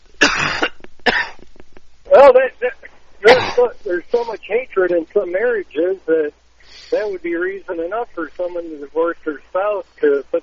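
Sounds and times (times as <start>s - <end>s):
man coughing: 0.2s - 1.4s, 3.2s - 3.8s
speech: 2.2s - 10.4s.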